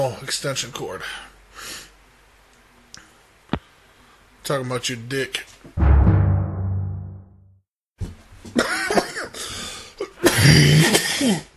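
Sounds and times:
speech: 0.0 - 1.8, 4.5 - 5.9
low rumbling noise: 5.8 - 7.4
harsh raspy coughing fit with strained breaths: 8.6 - 9.4, 10.0 - 11.5.

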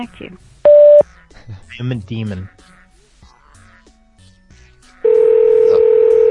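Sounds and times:
speech: 0.0 - 0.5, 1.5 - 2.6
Google Voice phone ringing tone: 0.7 - 1.0, 5.1 - 6.2.

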